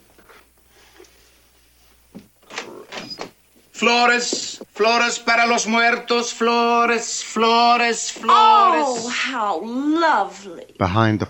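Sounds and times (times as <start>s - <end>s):
door opening: 2.2s - 3.4s
speech: 3.8s - 11.2s.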